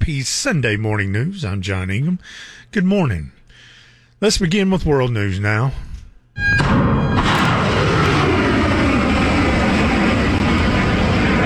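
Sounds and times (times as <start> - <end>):
speech: 0.1 - 3.4, 4.2 - 7.4
missile launch from a US warship: 6.4 - 11.4.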